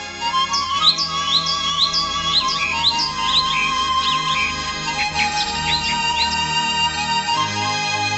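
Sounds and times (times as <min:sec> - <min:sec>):
flock of birds chirping and tweeting: 0:00.0 - 0:08.0.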